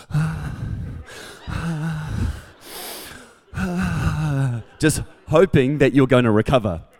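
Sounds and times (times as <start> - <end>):
person mimicking heavy labored breathing with groaning: 0.0 - 4.8
laughter: 0.0 - 6.9
speech: 4.8 - 6.9.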